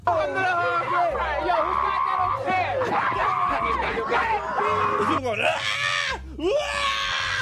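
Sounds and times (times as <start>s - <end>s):
loud dense crowd roaring and cheering: 0.0s - 7.4s
many voices in excited shouts and whoops: 0.1s - 7.4s.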